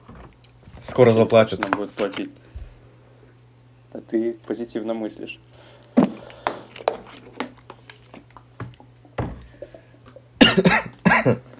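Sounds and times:
speech: 0.8 - 2.4, 3.9 - 5.5
person coughing to clear the throat: 10.4 - 11.5.

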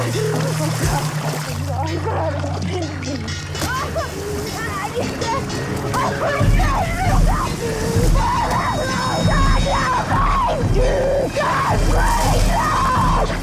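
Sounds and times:
water splashing and churning heavily: 0.0 - 13.4
woman screaming and shrieking: 6.1 - 13.4.

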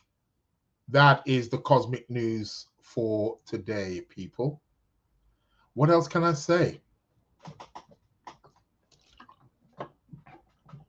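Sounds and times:
speech: 0.9 - 4.6, 5.8 - 6.8, 7.4 - 7.8
water being poured and drunk: 7.5 - 10.8.

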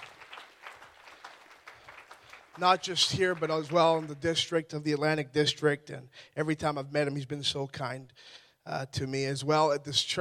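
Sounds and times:
audience applause in a church: 0.0 - 4.2
speech: 2.6 - 10.2.

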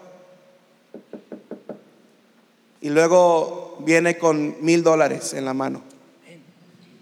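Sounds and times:
firm knocking on a door: 0.9 - 1.9
speech: 2.8 - 5.9.

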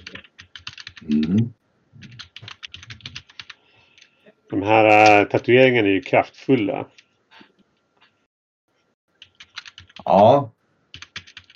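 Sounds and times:
typing on a computer keyboard: 0.0 - 1.4, 2.0 - 4.2, 9.2 - 10.1, 10.9 - 11.5
speech: 4.6 - 7.0, 10.1 - 10.5.

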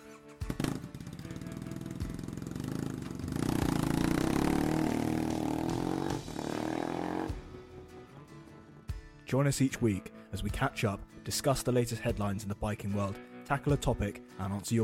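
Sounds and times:
straight-pipe Triumph Bonneville motorcycle engine starting, idling and revving: 0.4 - 7.4
speech: 9.3 - 14.8.

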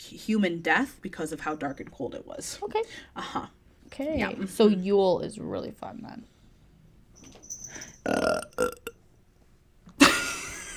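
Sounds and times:
speech: 0.1 - 6.3, 7.2 - 8.8
person burping: 8.1 - 8.9.

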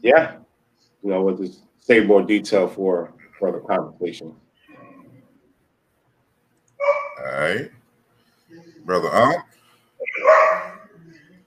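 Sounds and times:
speech: 0.0 - 0.4, 1.0 - 4.4, 7.2 - 7.8, 8.5 - 10.4
dog barking: 6.8 - 7.2, 10.1 - 10.9.

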